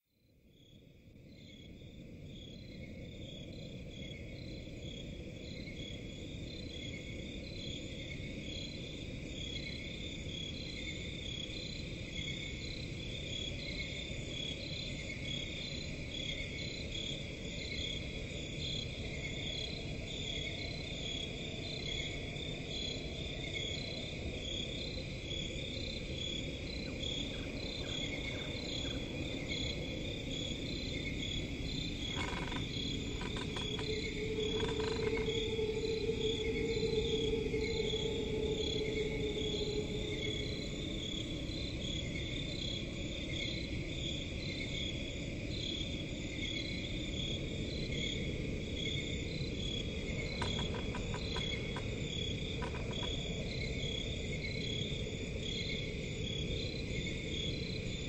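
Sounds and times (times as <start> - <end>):
forest at night: 0.0 - 58.0
crickets chirping at night in a forest: 0.1 - 58.0.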